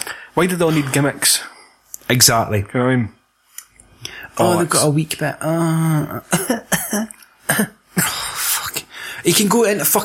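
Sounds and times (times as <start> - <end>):
speech: 0.4 - 1.5, 2.1 - 3.2, 4.0 - 8.1, 9.2 - 10.0
person faking coughs: 6.3 - 8.2.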